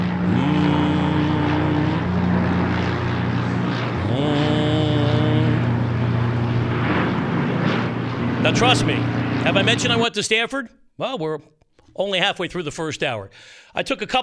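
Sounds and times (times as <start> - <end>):
blimp engine droning: 0.0 - 10.2
harmonic whines sweeping upward in pitch: 0.0 - 10.2
speech: 8.5 - 14.2.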